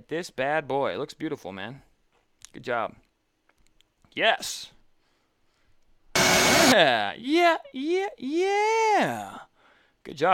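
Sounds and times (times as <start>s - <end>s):
speech: 0.1s - 1.9s, 2.5s - 3.0s, 4.2s - 4.8s, 6.7s - 10.3s
vacuum motor of a home-built vacuum table for flat stock printing roaring: 6.2s - 6.8s.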